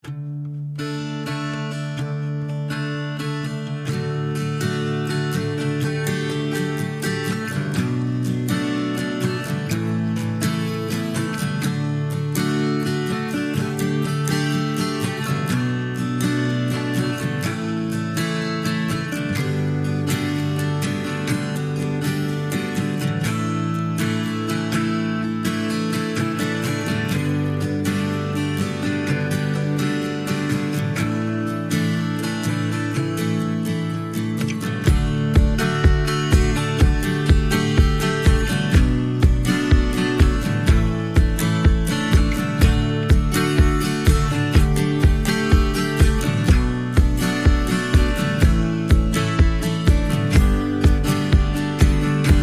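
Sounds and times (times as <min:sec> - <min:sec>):
guitar accompaniment: 0:00.0 - 0:52.4
reduced drums: 0:34.9 - 0:52.4.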